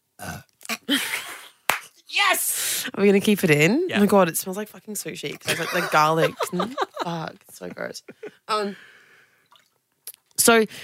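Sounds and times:
loud guttural burp: 0:00.2 - 0:00.5
speech: 0:00.2 - 0:01.2, 0:02.2 - 0:08.9, 0:10.4 - 0:10.8
laughter: 0:05.4 - 0:08.4.

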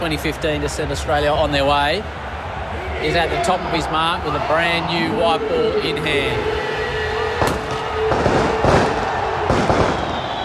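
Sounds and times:
speech: 0:00.0 - 0:06.6
large crowd roaring in a stadium: 0:02.0 - 0:10.4
fireworks booming and crackling in a stadium: 0:07.4 - 0:10.4.

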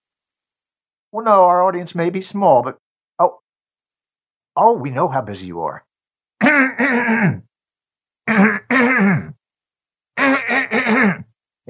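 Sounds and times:
speech: 0:01.1 - 0:03.4, 0:04.6 - 0:07.5
loud gravelly throat clearing: 0:06.4 - 0:07.5, 0:08.3 - 0:09.4, 0:10.2 - 0:11.3.

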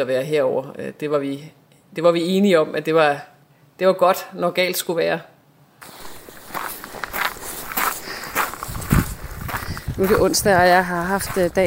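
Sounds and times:
speech: 0:00.0 - 0:06.0, 0:10.0 - 0:11.6
hiss: 0:00.0 - 0:11.0
footsteps of a person walking outdoors past a church: 0:05.8 - 0:11.6.

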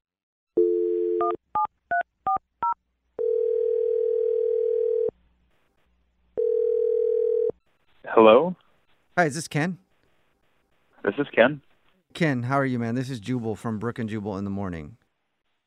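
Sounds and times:
telephone dial tone: 0:00.6 - 0:01.4, 0:03.2 - 0:05.1, 0:06.4 - 0:07.6
speech: 0:08.2 - 0:08.6, 0:09.2 - 0:09.8, 0:11.0 - 0:15.0.

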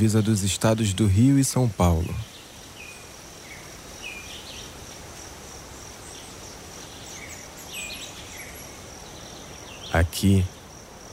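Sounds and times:
speech: 0:00.0 - 0:02.4, 0:10.0 - 0:10.6
high insect drone in a preserved forest in Brazil: 0:00.0 - 0:11.1
soft wind rushing in the tree canopy of a preserved forest in Brazil: 0:00.0 - 0:11.1
bird chirps and calls in a preserved forest on the Rio de Janeiro and São Paulo border: 0:01.6 - 0:04.8, 0:06.0 - 0:10.7.

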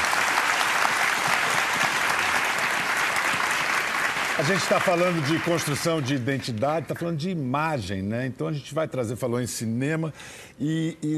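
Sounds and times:
audience applause: 0:00.0 - 0:06.6
speech: 0:04.4 - 0:11.1.

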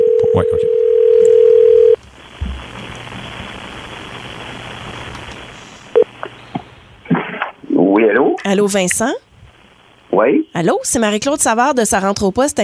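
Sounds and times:
telephone dial tone: 0:00.0 - 0:02.0
hissing telephone line: 0:00.0 - 0:12.6
speech: 0:00.4 - 0:00.8, 0:08.5 - 0:09.2, 0:10.2 - 0:12.6.

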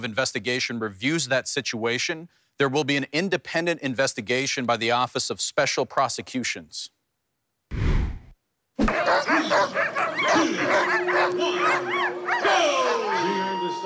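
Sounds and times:
speech: 0:00.0 - 0:07.0
brief burst of noise: 0:07.7 - 0:08.4
pack of sled dogs barking and yipping at a parade: 0:08.8 - 0:13.8.

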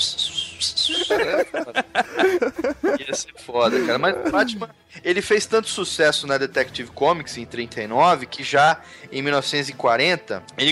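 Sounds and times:
small birds chirping: 0:00.0 - 0:01.3
laughter: 0:00.9 - 0:05.0
speech: 0:01.1 - 0:10.6.

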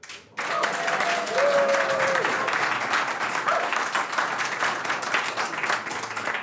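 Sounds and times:
live audience applauding at a Christmas tree event in Breukelen Netherlands: 0:00.0 - 0:06.4
whistles or cheers: 0:00.5 - 0:02.3.

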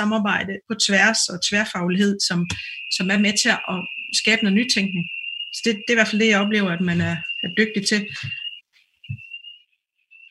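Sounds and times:
speech: 0:00.0 - 0:08.4
shrill electronic alarm tone in office building: 0:01.0 - 0:10.2.

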